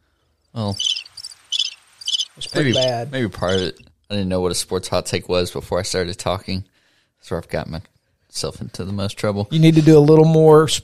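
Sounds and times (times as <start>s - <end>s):
crickets chirping sound effect: 0.4s - 3.8s
speech: 0.6s - 1.1s, 2.4s - 10.8s.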